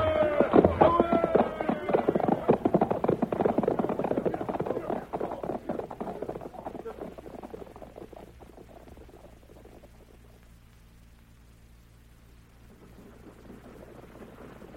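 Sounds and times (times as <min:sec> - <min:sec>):
stagecoach rumbling clatter on a creek road: 0:00.0 - 0:08.7
horse hooves galloping on a creek road: 0:00.0 - 0:11.4, 0:12.0 - 0:14.7.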